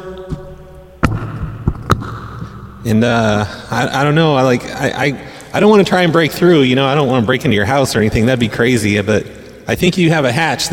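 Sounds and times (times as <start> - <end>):
heavy thuds of banging on a floor: 0.3 - 2.8
speech: 2.8 - 10.7.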